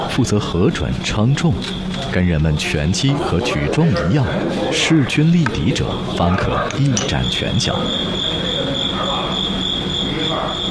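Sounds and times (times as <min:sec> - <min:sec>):
speech: 0:00.2 - 0:08.5
crickets chirping in a high-pitched trill: 0:00.8 - 0:10.6.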